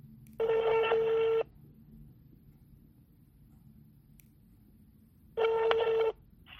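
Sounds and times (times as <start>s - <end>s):
telephone dialing tones placing a call: 0.4s - 1.5s, 5.4s - 6.5s.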